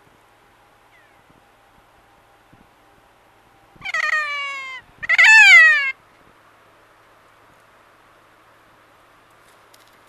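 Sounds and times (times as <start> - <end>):
kea uttering harsh drawn-out calls: 3.8 - 6.0.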